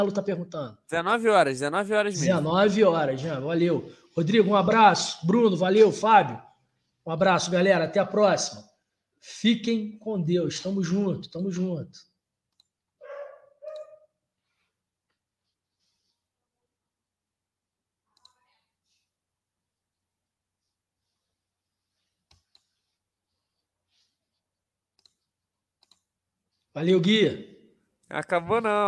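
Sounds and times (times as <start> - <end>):
speech: 0.0 - 6.5, 7.1 - 12.1, 26.8 - 27.5, 28.1 - 28.8
computer mouse clicks: 12.5 - 12.8, 13.6 - 13.9, 18.2 - 18.5, 22.2 - 22.9, 24.9 - 26.1
dog bark: 13.0 - 14.1.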